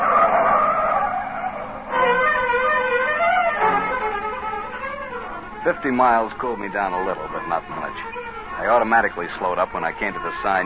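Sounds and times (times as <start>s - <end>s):
speeding car engine roaring: 0.0s - 5.8s
car tires squealing in skids: 0.0s - 10.6s
speech: 5.6s - 10.6s.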